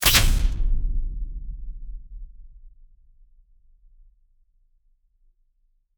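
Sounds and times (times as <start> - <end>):
punchy fluid metal weapon: 0.0 - 0.6.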